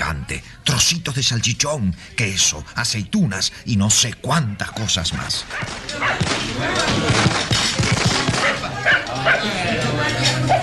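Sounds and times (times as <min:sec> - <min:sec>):
dense noisy background: 0:00.0 - 0:10.6
speech: 0:00.3 - 0:07.5
frightened dogs barking and yelping: 0:05.5 - 0:06.2, 0:08.3 - 0:09.6, 0:10.3 - 0:10.6
dogs whimpering: 0:08.4 - 0:09.6.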